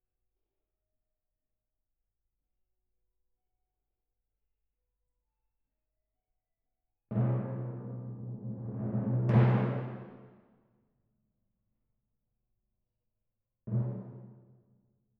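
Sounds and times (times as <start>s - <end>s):
timpani: 7.1s - 10.4s, 13.7s - 14.6s.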